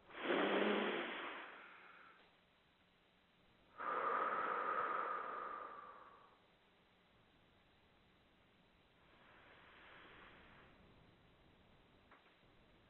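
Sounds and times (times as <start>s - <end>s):
noisy deep breaths in a guided breathing exercise: 0.0s - 2.4s, 3.7s - 6.5s, 9.0s - 10.9s.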